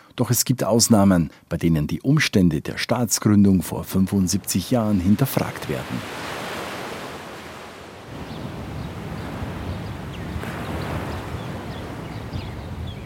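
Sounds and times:
wind: 0:00.0 - 0:13.0
speech: 0:00.2 - 0:06.4
Mediterranean waves washing onto a sandy shore: 0:04.3 - 0:13.0
faint bright chirps of birds: 0:08.2 - 0:13.0.

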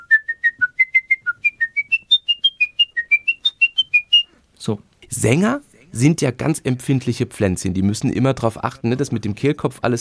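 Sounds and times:
person whistling an opera aria from memory: 0:00.0 - 0:04.4
speech: 0:04.6 - 0:10.0.

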